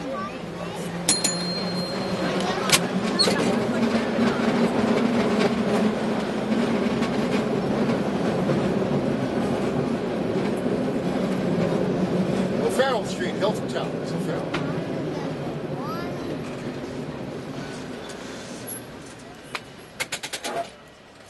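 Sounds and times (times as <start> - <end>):
faint voices: 0.0 - 21.2
old cable car rumbling along Powell Street in San Francisco: 0.0 - 21.2
rattling clattering cable car wheels: 0.2 - 21.2
sharp metallic clanks: 1.1 - 3.4.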